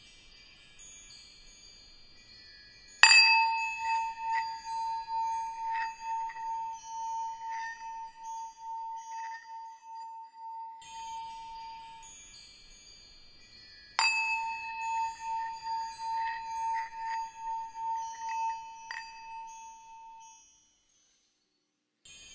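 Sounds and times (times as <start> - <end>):
shimmering chime tinkles: 0.0 - 21.4
bell and chime strikes: 3.0 - 12.1, 14.0 - 20.3.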